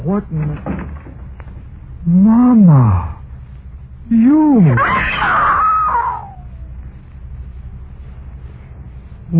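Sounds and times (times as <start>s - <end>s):
speech: 0.1s - 0.9s, 2.0s - 3.2s, 4.1s - 5.5s
woman screaming in terror: 4.8s - 6.5s.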